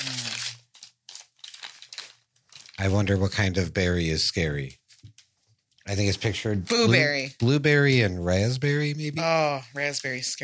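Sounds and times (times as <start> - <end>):
snack pouch crinkling as it is opened: 0.0 - 3.0
speech: 2.8 - 4.8, 5.9 - 10.4.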